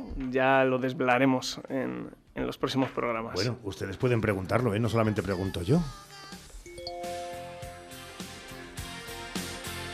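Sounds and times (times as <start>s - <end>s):
speech: 0.3s - 6.1s
messaging app notification chime jingle: 6.7s - 8.1s.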